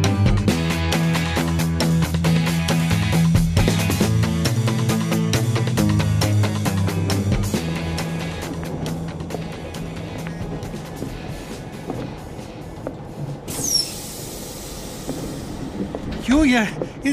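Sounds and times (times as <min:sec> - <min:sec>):
train rolling along the rails: 0:00.9 - 0:17.1
high train wheel squeal: 0:13.4 - 0:15.8
speech: 0:16.5 - 0:17.1.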